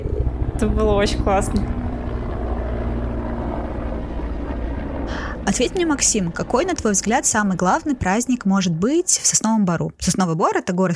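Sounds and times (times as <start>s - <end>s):
helicopter droning overhead with humming rotor tone: 0.0s - 10.9s
speech: 0.6s - 1.8s, 5.5s - 10.9s.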